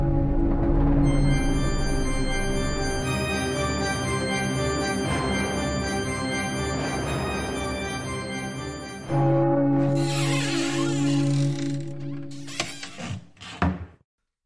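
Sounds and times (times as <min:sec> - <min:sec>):
heavy confessional door creaking and sliding open: 0:00.2 - 0:09.2, 0:09.7 - 0:14.0.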